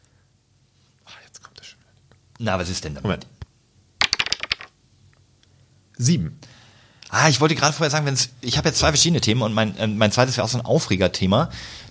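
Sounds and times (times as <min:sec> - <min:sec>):
speech: 0:02.4 - 0:03.4, 0:06.0 - 0:06.5, 0:07.1 - 0:11.8
plastic dice tumbling across a hard surface: 0:04.0 - 0:04.8.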